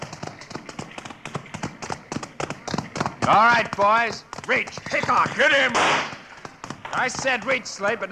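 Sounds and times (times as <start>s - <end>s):
several ridden horses' hooves clip-clopping: 0.0s - 8.1s
speech: 3.3s - 6.2s, 6.9s - 8.1s.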